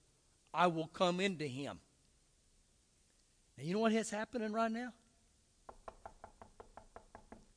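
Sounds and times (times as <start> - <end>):
speech: 0.5 - 1.9, 3.6 - 5.0
knocking on a door: 5.7 - 7.5.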